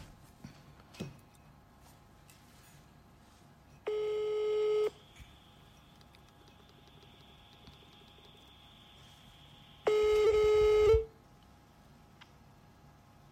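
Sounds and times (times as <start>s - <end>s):
telephone ringback tones of a call being dialled: 3.8s - 5.0s, 9.9s - 11.1s.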